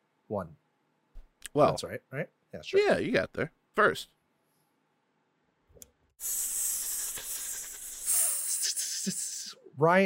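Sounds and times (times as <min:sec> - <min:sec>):
speech: 0:00.3 - 0:00.6, 0:01.5 - 0:04.2, 0:06.2 - 0:06.5, 0:09.8 - 0:10.0
person hissing like a snake: 0:06.2 - 0:09.6.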